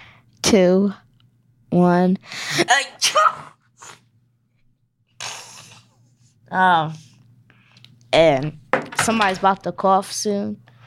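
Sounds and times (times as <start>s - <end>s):
speech: 0.5s - 1.1s, 1.7s - 4.0s, 6.5s - 7.1s, 8.1s - 10.6s
person sneezing on cue: 2.5s - 4.0s, 5.2s - 5.9s.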